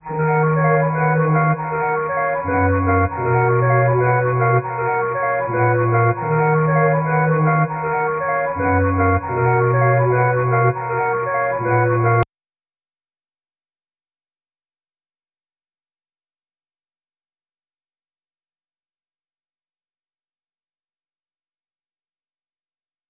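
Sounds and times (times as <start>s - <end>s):
flute melody loop: 0.0s - 12.2s.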